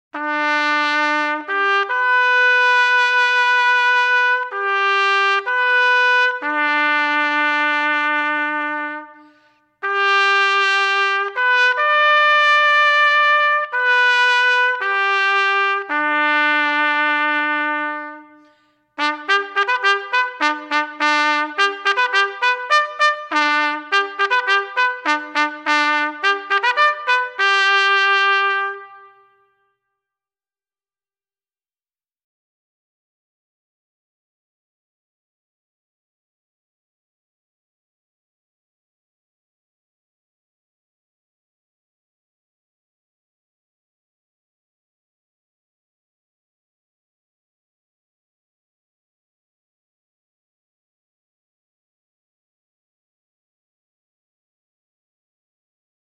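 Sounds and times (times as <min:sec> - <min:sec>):
ceremonial church call music: 0:00.2 - 0:29.6.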